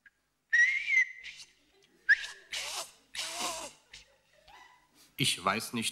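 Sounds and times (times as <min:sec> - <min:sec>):
person whistling short breathy notes: 0:00.5 - 0:01.5, 0:02.1 - 0:02.4
speech: 0:05.2 - 0:05.9.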